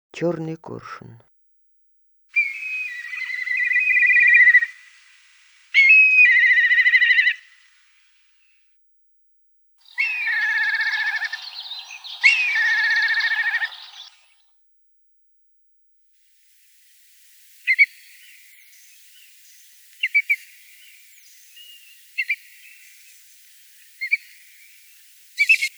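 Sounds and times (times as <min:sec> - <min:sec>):
black kite voice: 0:02.4 - 0:05.1, 0:05.8 - 0:07.5, 0:09.9 - 0:14.2, 0:16.3 - 0:25.7.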